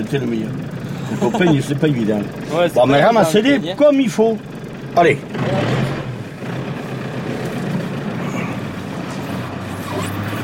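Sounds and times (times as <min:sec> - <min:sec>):
speech: 0:00.0 - 0:06.0
30-year-old truck engine rumbling heard from inside the truck: 0:00.0 - 0:10.4
laughter: 0:00.9 - 0:02.0.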